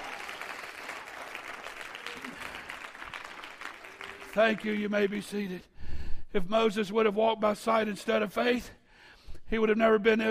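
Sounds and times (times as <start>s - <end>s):
church service audience applause: 0.0s - 5.3s
speech: 4.4s - 5.7s, 6.3s - 8.8s, 9.5s - 10.2s.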